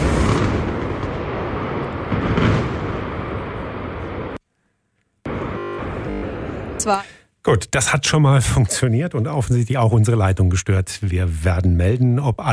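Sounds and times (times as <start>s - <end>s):
demolition blast of a boiler house: 0.0s - 4.4s
speech: 6.8s - 12.5s.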